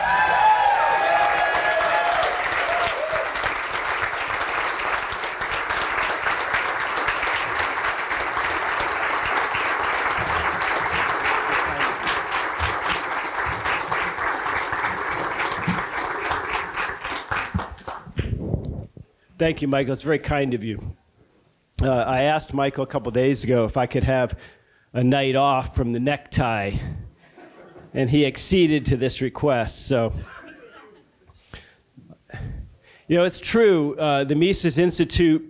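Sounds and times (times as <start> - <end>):
large audience applause: 0.0 - 18.2
speech: 19.4 - 21.0, 21.8 - 26.9, 27.9 - 30.4, 33.1 - 35.4.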